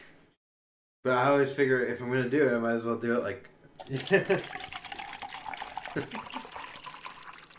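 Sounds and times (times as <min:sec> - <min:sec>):
speech: 0:01.0 - 0:04.8, 0:06.0 - 0:06.4
tap water pouring into a bottle: 0:03.8 - 0:07.5.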